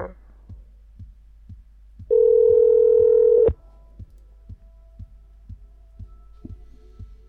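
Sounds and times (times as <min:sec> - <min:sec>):
telephone dial tone: 0:02.1 - 0:03.5
soft regular clicking: 0:04.0 - 0:04.3.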